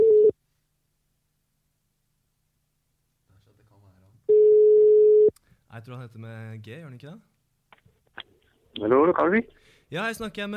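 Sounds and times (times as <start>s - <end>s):
ringback tones of an outgoing phone call: 4.3s - 5.3s
speech: 5.7s - 7.3s, 8.8s - 10.5s.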